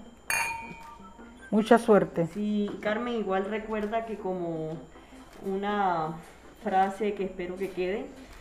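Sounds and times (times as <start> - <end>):
glasses clinking in a toast: 0.3 - 0.9
speech: 1.5 - 8.3.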